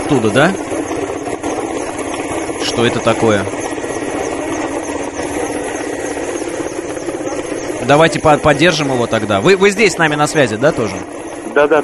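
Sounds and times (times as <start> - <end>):
helicopter rotor noise: 0.0 - 11.8
speech: 0.1 - 0.9, 2.7 - 3.6, 7.9 - 11.8.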